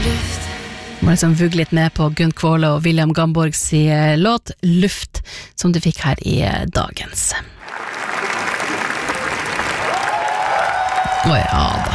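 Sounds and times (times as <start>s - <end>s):
speech: 1.0s - 7.9s, 11.2s - 11.9s
cheers: 7.6s - 11.9s
large audience applause after a film screening in Cannes: 7.6s - 11.9s.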